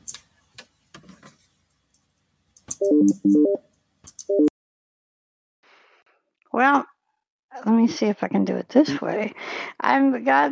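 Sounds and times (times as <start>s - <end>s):
electronic touch-tone beeps from a phone keypad: 2.8s - 3.6s, 4.2s - 4.5s
speech: 2.8s - 3.7s, 4.3s - 4.5s, 6.6s - 6.9s, 7.7s - 10.4s.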